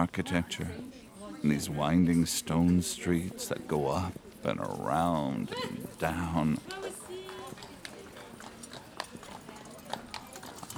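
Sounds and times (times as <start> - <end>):
speech: 0.0 - 6.9
murmuring voices: 0.0 - 10.7
street bustle: 0.0 - 10.7
horse hooves clip-clopping on a stone street: 5.6 - 10.7.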